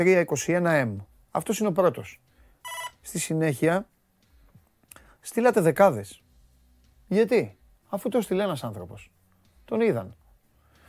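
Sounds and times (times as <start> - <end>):
speech: 0.0 - 3.9, 5.2 - 6.2, 7.1 - 10.2
short bright electronic telephone ring: 2.6 - 3.0.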